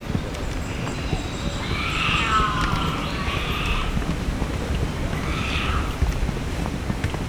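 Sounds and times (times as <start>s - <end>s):
footsteps while walking in Puma shoes: 0.0s - 7.2s.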